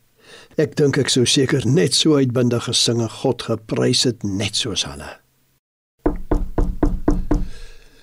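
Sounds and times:
speech: 0.5s - 5.2s
firm knocking on a door: 6.0s - 7.5s.

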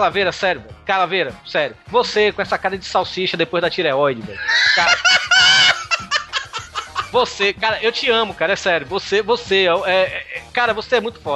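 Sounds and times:
speech: 0.0s - 5.7s, 7.1s - 11.3s
laughter: 4.3s - 7.4s
chicken squawking: 4.4s - 7.1s.

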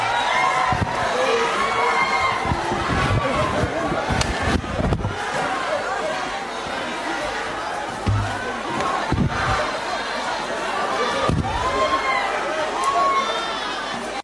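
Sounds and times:
crowd of MPs shouting and chanting in parliament: 0.0s - 14.2s
thuds and scuffling bangs of security storming parliament: 8.0s - 9.4s.

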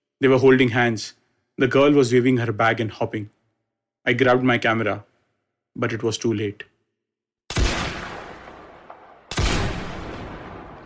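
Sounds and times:
speech: 0.2s - 3.4s, 4.0s - 5.1s, 5.8s - 6.7s
gunfire near a bridge in wartime: 7.5s - 10.8s.

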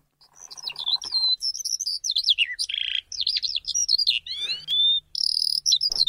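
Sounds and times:
skylark singing in rapid high warbling trills: 0.2s - 6.0s.

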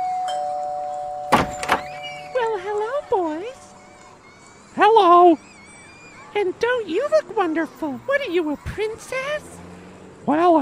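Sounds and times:
doorbell ringing with a sustained electronic tone: 0.0s - 3.7s
door clattering as it is handled: 1.3s - 2.3s
speech: 6.4s - 9.6s, 10.3s - 10.6s.

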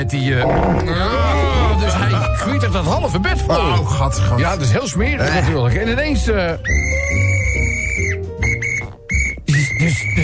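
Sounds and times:
speech: 0.0s - 7.2s
rough low noise: 0.4s - 1.2s
loud shrill referee's whistle blasts: 6.6s - 10.2s.

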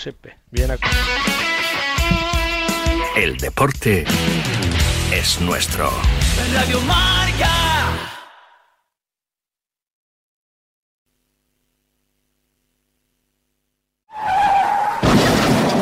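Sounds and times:
speech: 0.0s - 2.3s, 3.2s - 8.2s
car tires skidding in a traffic accident: 14.1s - 15.8s.

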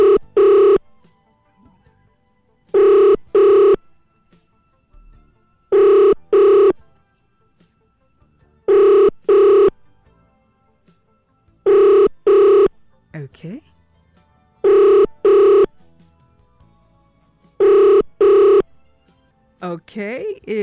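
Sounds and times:
telephone ringback tone on an outgoing call: 0.0s - 0.8s, 2.7s - 3.8s, 5.7s - 6.8s, 8.7s - 9.8s, 11.7s - 12.8s, 14.6s - 15.8s, 17.6s - 18.7s
speech: 19.8s - 20.6s.

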